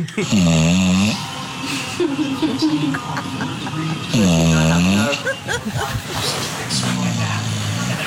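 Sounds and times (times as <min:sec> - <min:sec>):
laughter: 0:00.0 - 0:00.4, 0:01.6 - 0:06.6
sleeping 10-year-old dog snoring: 0:00.2 - 0:01.8, 0:04.0 - 0:08.0
faint voices: 0:01.3 - 0:08.0.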